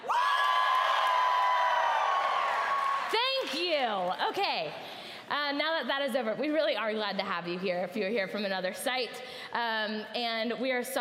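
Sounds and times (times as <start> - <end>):
large crowd cheering loudly with whoops and shouts: 0.0 - 3.5
speech: 3.5 - 10.9.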